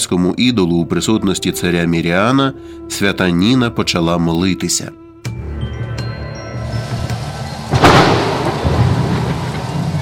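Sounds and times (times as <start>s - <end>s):
speech: 0.0s - 5.0s
steady rain: 6.7s - 9.9s
thunderclap and rolling rumble: 6.8s - 9.9s.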